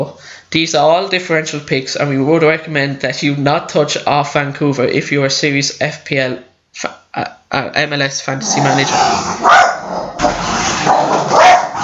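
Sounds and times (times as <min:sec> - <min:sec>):
speech: 0:00.0 - 0:11.8
dog barking: 0:09.4 - 0:10.2, 0:10.8 - 0:11.8.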